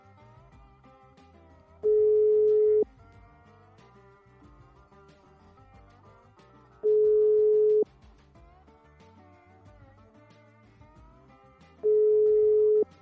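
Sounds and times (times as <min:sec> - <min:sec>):
faint low hum: 0:00.0 - 0:12.9
unanswered telephone ringback tone: 0:06.8 - 0:07.9, 0:11.8 - 0:12.8.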